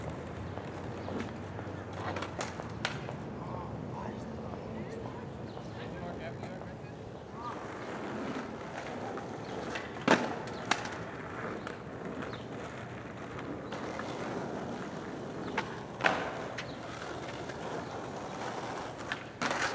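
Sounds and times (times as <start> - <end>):
skateboard clacks: 0.0 - 3.4, 5.4 - 19.7
skateboard wheels rolling on pavement in a park: 0.0 - 19.7
wind: 0.0 - 19.7
faint voices: 0.6 - 9.6.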